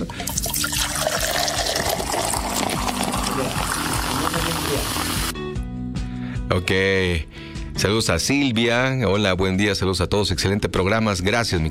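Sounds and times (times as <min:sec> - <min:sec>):
soft drink fizzing and pouring: 0:00.0 - 0:05.3
speech: 0:06.5 - 0:11.7.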